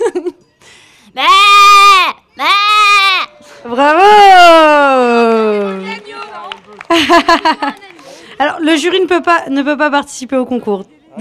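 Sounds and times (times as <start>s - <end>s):
person imitating a Limousin ewe bleating: 1.2s - 3.4s
laughter: 3.2s - 9.1s
speech: 8.7s - 11.1s.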